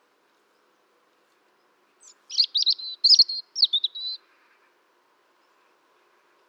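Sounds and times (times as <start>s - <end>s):
European robin Erithacus rubecula singing a warbled phrase: 2.0s - 4.2s.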